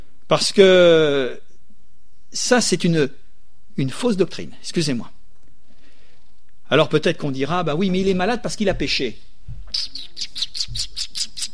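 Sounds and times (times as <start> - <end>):
speech: 0.3 - 1.4, 2.3 - 3.2, 3.8 - 5.2, 6.7 - 10.8
small birds chirping: 9.7 - 11.5.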